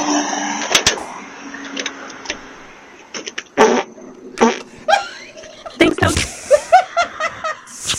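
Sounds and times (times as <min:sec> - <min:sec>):
drawn-out sputtering fart: 0:03.6 - 0:04.8
people giggling and laughing: 0:04.8 - 0:07.9.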